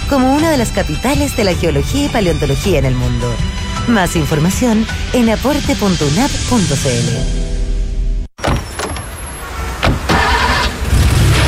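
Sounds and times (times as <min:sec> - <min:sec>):
speech: 0:00.1 - 0:07.4
car engine cranking and catching: 0:09.1 - 0:11.4.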